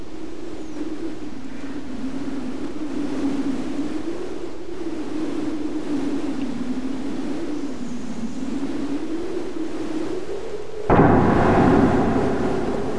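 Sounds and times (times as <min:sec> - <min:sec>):
howling wind: 0:00.0 - 0:12.9
rumbling thunder crash: 0:10.9 - 0:12.9.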